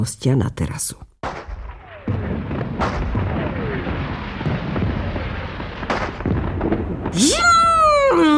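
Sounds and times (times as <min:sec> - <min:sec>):
speech: 0:00.0 - 0:01.1, 0:07.2 - 0:07.4
sharp bangs: 0:01.2 - 0:07.4
fireworks booming and crackling: 0:01.2 - 0:08.3
shrill whistling firework rocket screaming upward: 0:01.6 - 0:06.4.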